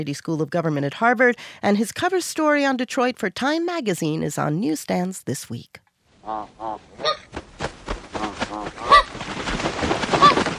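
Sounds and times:
speech: 0.0s - 7.4s, 8.5s - 8.9s
migratory birds honking: 6.2s - 7.3s, 8.1s - 9.2s, 10.2s - 10.4s.

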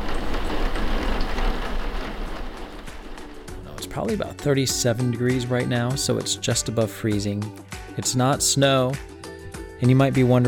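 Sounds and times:
steady rain: 0.0s - 3.6s
raindrops pattering on a surface: 0.0s - 4.2s
speech: 4.0s - 9.1s, 9.8s - 10.4s.

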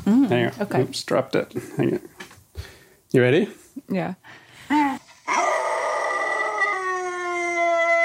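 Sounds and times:
speech: 0.1s - 4.8s
pet dog howling played through a small phone speaker: 4.9s - 8.0s.

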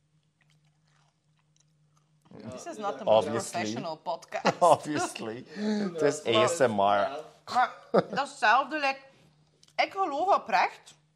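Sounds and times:
person chewing crunchy crackers: 0.0s - 2.4s
speech: 2.6s - 9.1s, 9.8s - 11.0s
laughter: 4.4s - 6.7s, 7.9s - 8.3s.

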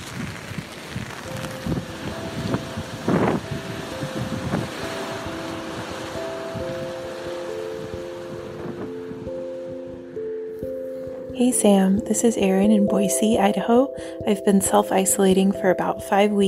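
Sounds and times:
rain outdoors: 0.0s - 8.9s
wind outdoors: 0.0s - 11.9s
speech: 11.4s - 16.4s.

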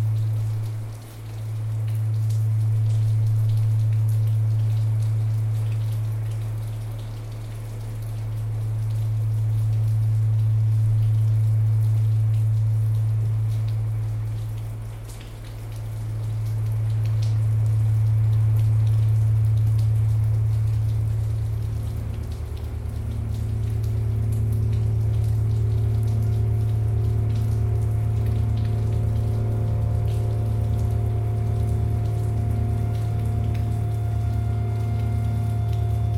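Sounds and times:
rain patter: 0.0s - 36.1s
low swelling drone: 17.7s - 36.1s.

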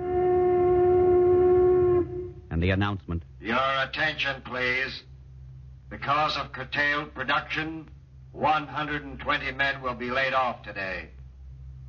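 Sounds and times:
factory whistle blowing: 0.0s - 2.5s
speech: 2.6s - 5.1s, 5.9s - 11.2s.

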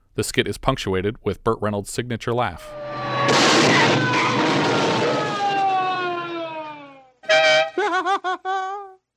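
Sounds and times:
speech: 0.2s - 4.5s, 7.8s - 8.8s
police siren wailing: 2.6s - 7.5s
race car crash: 2.7s - 6.8s
race car engine whining: 2.7s - 7.2s
laughter: 7.8s - 9.0s.

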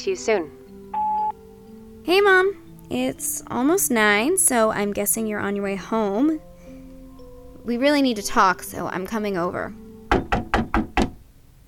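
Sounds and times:
speech: 0.0s - 0.6s, 2.0s - 6.5s, 7.6s - 9.8s
sharp knocks on a door: 10.1s - 11.2s.

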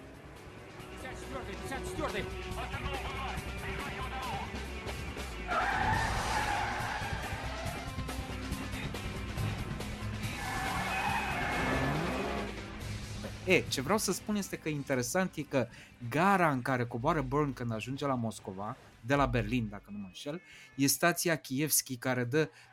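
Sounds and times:
car engines roaring: 0.0s - 13.4s
speech: 1.3s - 4.6s, 13.5s - 22.7s
car tires squealing and skidding: 5.5s - 8.1s, 10.2s - 12.6s.

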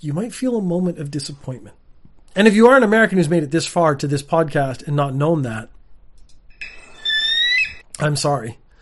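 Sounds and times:
speech: 0.0s - 1.8s, 2.4s - 5.8s, 8.0s - 8.6s
bald eagle screech: 6.6s - 7.9s.

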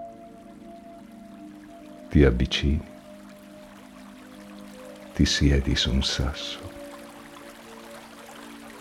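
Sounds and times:
distant stream flowing gently in a sunny snow-covered mountain setting: 0.0s - 8.7s
calm voice speaking in short phrases: 2.1s - 2.9s, 5.2s - 6.8s
speech: 2.1s - 2.9s, 5.2s - 6.7s.

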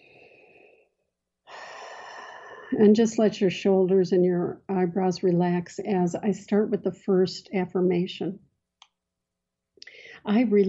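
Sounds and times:
deep breath during a guided relaxation exercise: 0.0s - 2.8s
speech: 2.7s - 8.4s, 10.2s - 10.6s.

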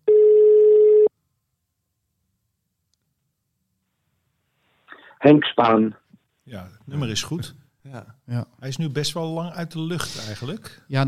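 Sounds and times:
telephone ring tone while calling an answering machine: 0.0s - 1.1s
speech: 5.2s - 11.0s.

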